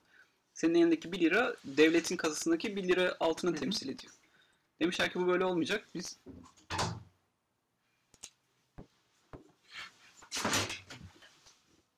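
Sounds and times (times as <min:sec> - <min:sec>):
speech: 0:00.6 - 0:04.2, 0:04.8 - 0:06.8
door rattling and thudding as someone tries to open it: 0:06.7 - 0:07.1.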